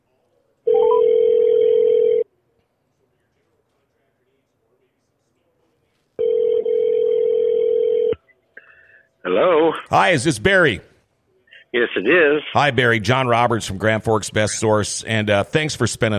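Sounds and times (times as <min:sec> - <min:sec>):
phone line's ringback tone while placing a call: 0:00.7 - 0:02.2, 0:06.2 - 0:08.2
speech: 0:09.4 - 0:10.9, 0:11.7 - 0:16.1.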